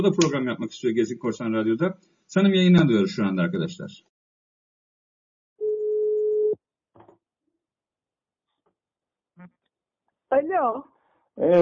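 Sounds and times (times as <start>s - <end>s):
speech: 0.0s - 4.1s, 10.3s - 11.6s
steady telephone tone: 5.6s - 6.6s.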